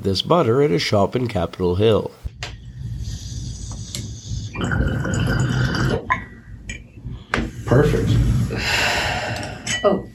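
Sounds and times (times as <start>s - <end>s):
speech: 0.0s - 2.2s, 7.7s - 9.0s, 9.8s - 10.1s
water bubbling and gurgling in a water pipe: 3.3s - 6.3s.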